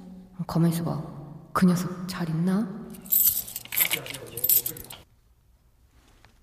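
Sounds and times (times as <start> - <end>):
speech: 0.4 - 3.3
coins jingling at a payphone: 3.0 - 5.0.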